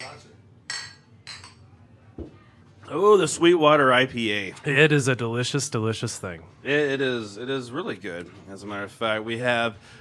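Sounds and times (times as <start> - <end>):
beer glasses clinking together in a toast in a saloon: 0.0 - 1.6
speech: 2.9 - 9.9.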